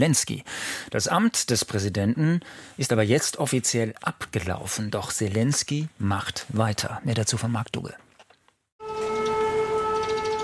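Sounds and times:
speech: 0:00.0 - 0:08.1
steady air raid siren: 0:08.8 - 0:10.4.

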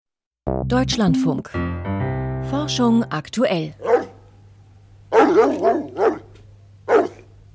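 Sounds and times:
speech: 0:00.6 - 0:04.0
dog barking: 0:03.8 - 0:04.2, 0:05.1 - 0:07.3.

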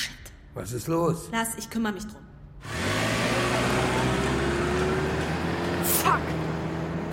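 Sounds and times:
speech: 0:00.6 - 0:02.7
car engine humming as the vehicle pulls off: 0:02.6 - 0:07.1
road noise: 0:02.6 - 0:07.1.

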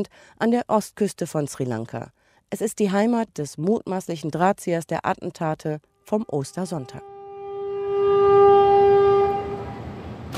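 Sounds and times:
speech: 0:00.0 - 0:07.1
passenger train horn blowing a long loud chord: 0:06.3 - 0:10.3
passenger train rumbling on rails in Sri Lanka: 0:08.1 - 0:10.3.

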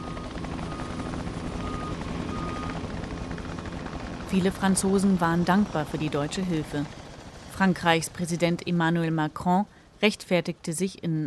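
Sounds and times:
helicopter transporting patients to other regions of France during the Corona crisis: 0:00.0 - 0:11.2
speech: 0:04.3 - 0:07.0, 0:07.6 - 0:11.2.

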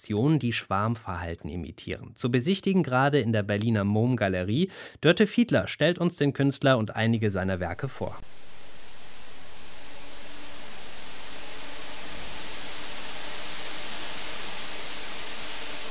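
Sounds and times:
speech: 0:00.0 - 0:08.5
fans blowing air into large golden foil cushions in a factory hall: 0:08.2 - 0:15.9.

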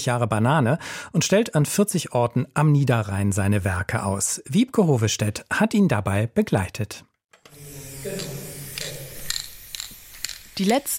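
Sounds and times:
speech: 0:00.0 - 0:07.1, 0:10.6 - 0:10.9
spray can rattling as it is shaken: 0:07.8 - 0:10.9.

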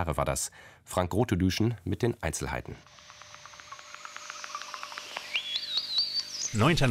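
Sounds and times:
speech: 0:00.0 - 0:03.1, 0:06.5 - 0:06.8
electronic chirps from fusion reactor sensors: 0:02.8 - 0:06.8
wavering rising high-pitched tone: 0:02.8 - 0:06.8.

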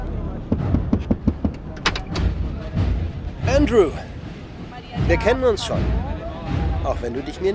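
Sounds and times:
low rumbling: 0:00.0 - 0:07.0
pickup truck door metallic clunks: 0:00.6 - 0:02.7
pickup truck door latch clicks: 0:01.5 - 0:02.4
speech: 0:03.6 - 0:04.1, 0:05.1 - 0:07.5.

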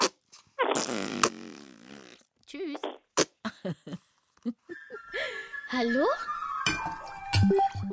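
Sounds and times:
loud drawn-out fart with a rippling buzzy tone: 0:00.0 - 0:03.4
speech: 0:00.8 - 0:01.4, 0:02.5 - 0:02.9, 0:03.6 - 0:04.6, 0:05.7 - 0:06.3, 0:07.5 - 0:07.8.

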